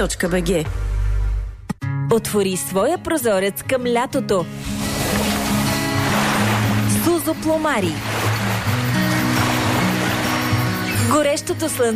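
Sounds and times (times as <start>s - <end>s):
speech: 0.0s - 0.9s, 2.1s - 5.3s, 7.2s - 8.7s, 11.1s - 11.9s
sea waves on the shore: 4.5s - 11.9s.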